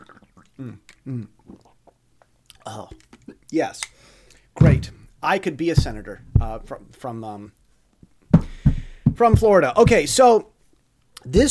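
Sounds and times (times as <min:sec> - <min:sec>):
person drinking water with throaty gulps: 0:00.0 - 0:03.0
wet mouth and lip sounds: 0:00.0 - 0:03.2
speech: 0:00.6 - 0:01.6, 0:02.7 - 0:07.6, 0:09.2 - 0:10.5, 0:11.2 - 0:11.4.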